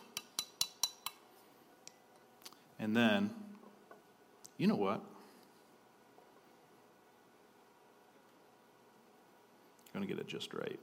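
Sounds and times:
spoon stirring a drink in a glass: 0.0s - 1.2s
speech: 2.8s - 3.4s, 4.6s - 5.1s, 10.0s - 10.8s.

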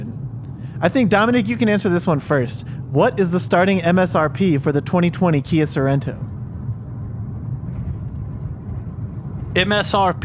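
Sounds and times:
speech: 0.8s - 6.3s, 9.6s - 10.2s
low rumble of road and engine noise of car moving through traffic: 5.8s - 10.2s.

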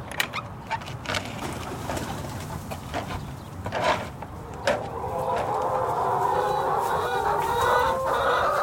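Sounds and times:
chickens clucking inside a coop: 1.4s - 8.6s
chicken squawks: 4.9s - 8.6s.

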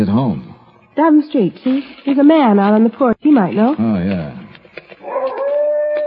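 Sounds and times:
speech: 0.0s - 4.4s
dog howling mournfully: 5.0s - 6.0s.

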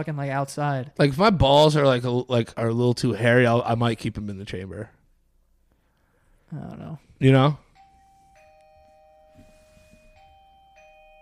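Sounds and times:
speech: 0.0s - 5.0s, 6.5s - 7.6s
electronic doorbell chiming: 7.7s - 11.2s.

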